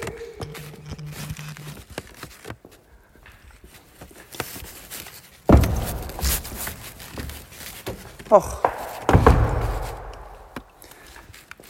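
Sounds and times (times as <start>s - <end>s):
speech: 8.3s - 8.6s
door falling shut with a heavy double thud: 9.0s - 10.2s.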